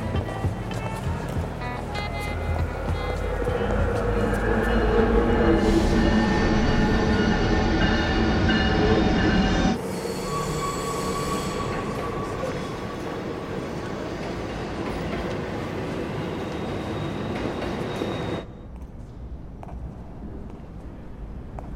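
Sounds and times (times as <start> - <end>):
train standing at a station, rail rumble: 0.1 - 21.7
train wheels squealing: 2.0 - 18.5.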